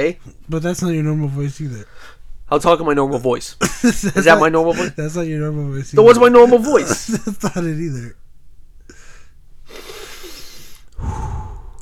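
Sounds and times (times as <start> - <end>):
speech: 0.0 - 8.2
heavy rasping breathing: 8.9 - 11.8.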